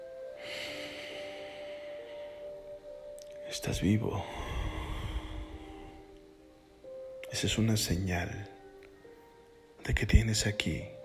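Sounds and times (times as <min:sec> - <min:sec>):
deep breath in and out: 0:00.3 - 0:02.8, 0:04.2 - 0:06.1
speech: 0:03.5 - 0:04.6, 0:07.4 - 0:08.6, 0:09.9 - 0:11.0.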